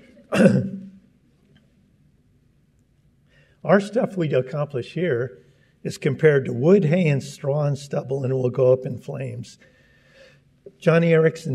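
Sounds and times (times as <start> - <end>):
short rough cough or throat-clearing: 0.1 - 0.9
speech: 0.3 - 0.8, 3.6 - 9.8, 10.8 - 11.5.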